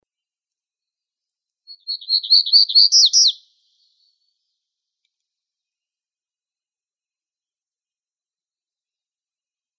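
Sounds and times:
black-throated gray warbler buzzy song in Arizona: 0.8s - 4.6s
speech: 2.4s - 3.3s.

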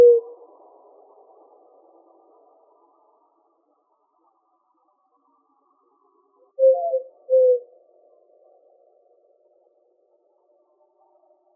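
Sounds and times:
Eurasian collared dove cooing in Arizona, United States: 0.0s - 0.4s, 6.6s - 7.6s.

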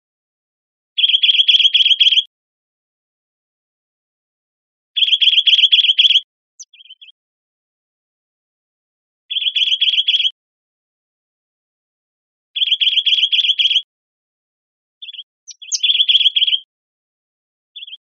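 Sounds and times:
bridled titmouse calling in Arizona: 1.0s - 2.2s, 5.0s - 7.1s, 9.3s - 10.3s, 12.6s - 13.8s, 15.0s - 16.6s, 17.8s - 18.0s.

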